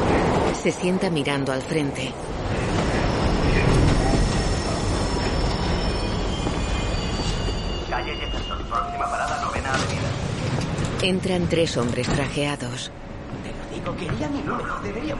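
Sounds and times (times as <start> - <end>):
subway train car riding along the tracks: 0.0 - 15.1
speech: 0.6 - 2.6, 11.0 - 13.1, 13.8 - 15.1
thin metallic wheel squeals of subway train: 3.0 - 9.5.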